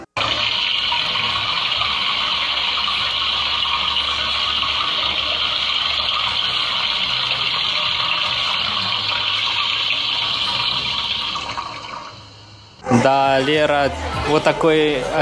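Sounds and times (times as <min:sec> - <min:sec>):
water gushing: 0:00.2 - 0:12.8
speech: 0:13.4 - 0:15.1.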